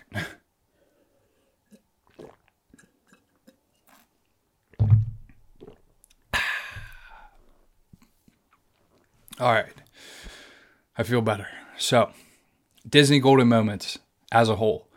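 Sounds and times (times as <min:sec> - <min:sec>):
person sipping water: 0:01.1 - 0:04.8, 0:05.5 - 0:09.4
speech: 0:09.4 - 0:09.8, 0:11.0 - 0:12.2, 0:12.9 - 0:14.9.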